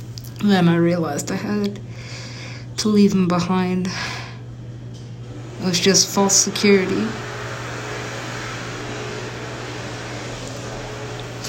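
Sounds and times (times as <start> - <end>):
speech: 0.4 - 2.2, 2.8 - 4.2, 5.6 - 7.3
vacuum cleaner running: 3.3 - 11.4.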